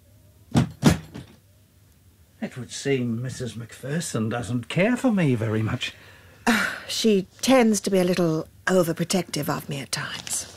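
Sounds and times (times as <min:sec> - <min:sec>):
solid knocking thuds of a door swinging shut: 0:00.5 - 0:01.4
speech: 0:02.5 - 0:06.2, 0:06.9 - 0:10.3.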